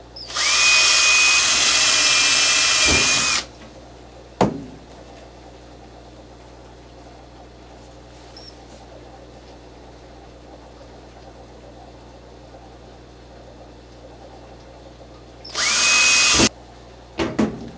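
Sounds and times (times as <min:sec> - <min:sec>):
power drill drilling holes at a slight angle: 0:00.2 - 0:03.5, 0:15.5 - 0:16.5.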